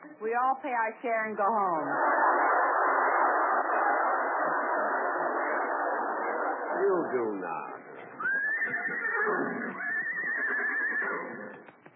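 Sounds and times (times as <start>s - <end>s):
speech: 0.2s - 2.5s, 6.8s - 7.7s, 8.9s - 9.9s
laughter: 1.6s - 8.3s
horse neighing: 8.0s - 11.6s.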